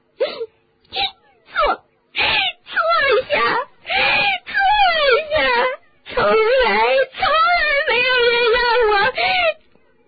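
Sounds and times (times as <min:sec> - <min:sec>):
voice imitating a house elf crying and wailing loudly: 0:01.0 - 0:09.6.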